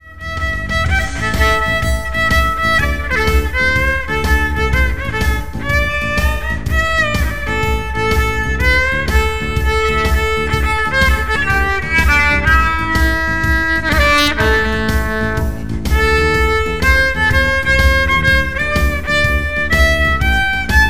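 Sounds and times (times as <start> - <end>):
blues improvisation in A: 0.0 - 20.8.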